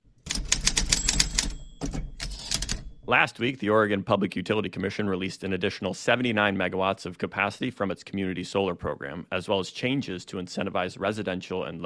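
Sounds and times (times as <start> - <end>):
typewriter keys clacking: 0.2 - 3.1
speech: 3.1 - 11.8.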